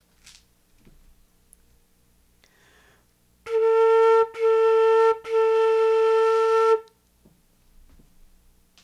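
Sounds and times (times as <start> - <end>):
modern flute playing a low mid-ranged tone: 3.5 - 6.9.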